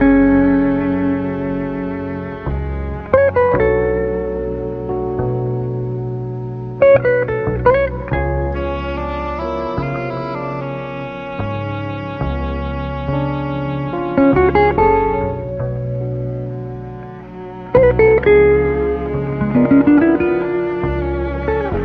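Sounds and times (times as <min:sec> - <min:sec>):
sad guitar loop: 0:00.0 - 0:21.8
strings: 0:00.0 - 0:21.8.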